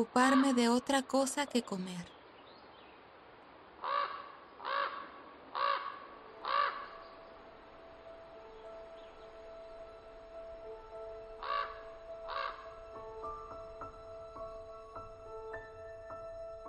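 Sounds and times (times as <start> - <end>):
speech: 0.0 - 2.2
faint birds chirping outdoors: 0.0 - 16.6
crows cawing harshly: 3.8 - 7.2, 10.9 - 13.7.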